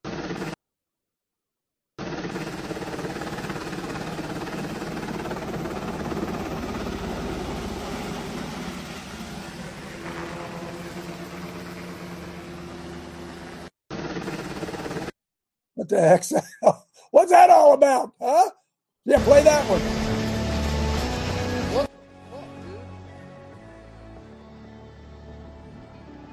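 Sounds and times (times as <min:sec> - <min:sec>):
helicopter hovering: 0:00.0 - 0:00.6, 0:02.0 - 0:15.2, 0:19.1 - 0:23.0
speech: 0:15.9 - 0:20.0.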